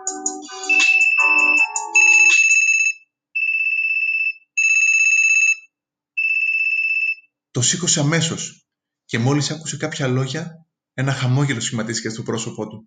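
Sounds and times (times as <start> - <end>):
chirpy electronic tones: 0.0 - 2.5
telephone ringing with electronic warbling bursts: 0.0 - 7.2
speech: 7.6 - 12.8.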